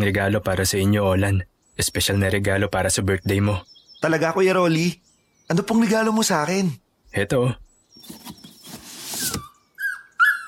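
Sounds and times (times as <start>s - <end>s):
speech: 0.0s - 8.2s
soft rustling and shuffling: 8.0s - 9.5s
newborn puppy whimpering: 9.4s - 10.4s.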